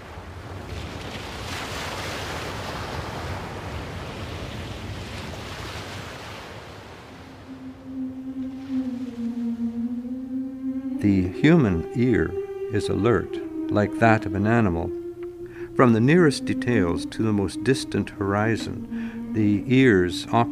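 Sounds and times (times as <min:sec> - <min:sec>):
ocean waves washing at the sea surface: 0:00.0 - 0:20.5
low drawn-out moaning tone with harmonics: 0:07.3 - 0:20.5
speech: 0:11.0 - 0:15.0, 0:15.8 - 0:20.5.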